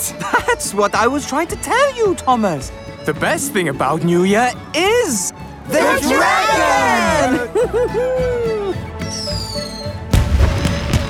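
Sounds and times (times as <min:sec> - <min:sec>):
speech: 0:00.1 - 0:08.5
laughter: 0:05.9 - 0:08.8
loud firework burst: 0:10.2 - 0:11.0.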